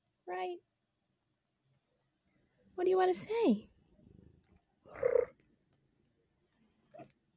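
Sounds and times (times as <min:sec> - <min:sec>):
speech: 0:00.3 - 0:00.7, 0:02.8 - 0:03.7
female cat purring: 0:04.9 - 0:05.4.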